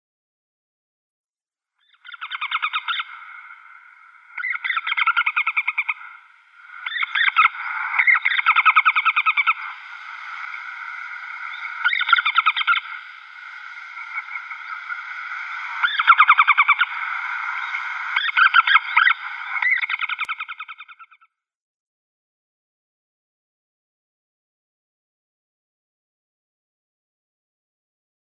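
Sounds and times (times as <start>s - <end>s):
female Pallid Harrier calling: 2.0s - 20.8s.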